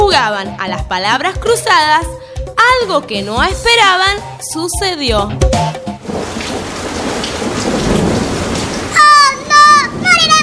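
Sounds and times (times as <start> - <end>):
speech: 0.2 - 6.6
heavy rain pouring down around a camping tent: 6.0 - 10.4
thunder rumble: 6.0 - 10.4.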